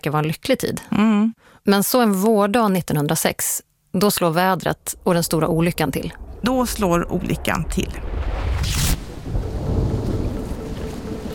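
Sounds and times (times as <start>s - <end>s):
speech: 0.0s - 8.8s
deep rumbling roll of thunder: 4.6s - 11.3s
heavy rain pouring on streets in Paris: 4.9s - 11.3s.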